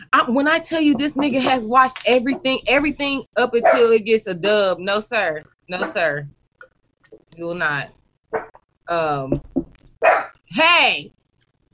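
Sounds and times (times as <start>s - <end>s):
speech: 0.1s - 6.4s, 7.1s - 11.2s
dog barking: 10.0s - 10.4s.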